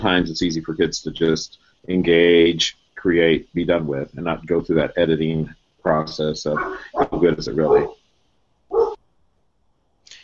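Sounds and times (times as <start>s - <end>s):
speech: 0.0s - 8.0s
faint brief hiss: 0.0s - 10.2s
dog barking: 6.6s - 8.0s, 8.7s - 9.0s.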